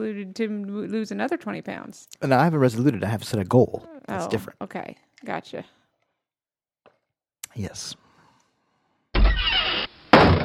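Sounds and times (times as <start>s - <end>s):
speech: 0.0s - 5.8s, 7.6s - 8.0s
door banging shut: 9.2s - 10.4s.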